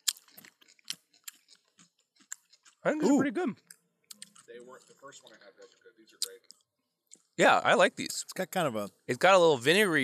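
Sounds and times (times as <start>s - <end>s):
chewing crunchy brine-pickled cucumber chips: 0.0s - 7.4s
speech: 2.8s - 3.7s, 4.5s - 6.7s, 7.4s - 10.0s.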